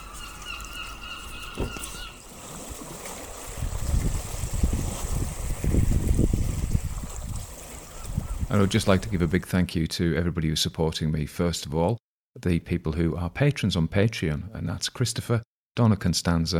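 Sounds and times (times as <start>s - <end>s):
seagulls calling: 0.0s - 2.4s, 7.7s - 9.3s
sea waves rushing: 0.0s - 9.4s
speech: 1.6s - 1.9s, 8.5s - 16.5s.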